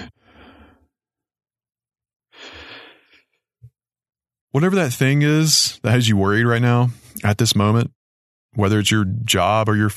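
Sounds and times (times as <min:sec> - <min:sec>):
person taking a deep breath slowly: 0:00.0 - 0:00.9, 0:02.3 - 0:03.4
speech: 0:04.6 - 0:09.9.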